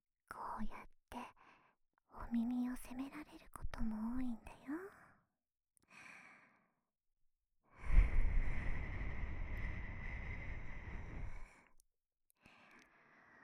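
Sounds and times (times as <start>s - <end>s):
speech: 0.6s - 0.8s, 2.3s - 4.6s
breathy exhale blown against the microphone: 7.8s - 11.5s
soft inhale: 7.8s - 11.7s, 12.4s - 13.4s.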